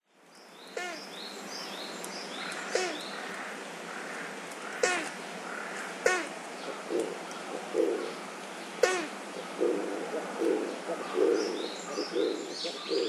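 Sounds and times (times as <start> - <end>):
Oriental Turtle Dove threat call: 0.8 - 1.1, 2.6 - 4.1, 4.7 - 8.2, 8.8 - 13.0.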